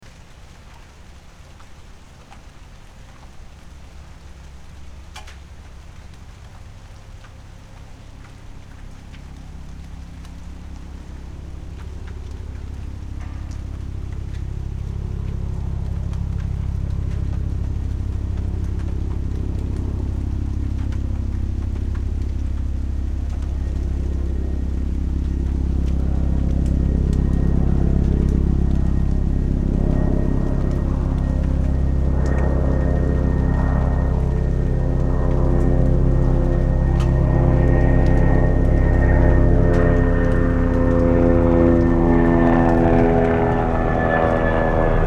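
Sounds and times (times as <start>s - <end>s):
rain: 0.0s - 45.0s
helicopter: 4.0s - 45.0s.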